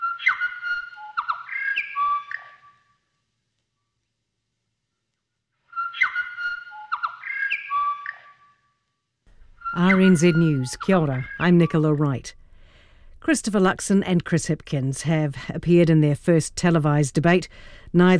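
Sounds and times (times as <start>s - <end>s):
New Zealand bellbird korimako song: 0.0s - 2.9s, 5.7s - 8.6s, 9.6s - 11.8s
speech: 9.8s - 12.4s, 13.2s - 18.1s.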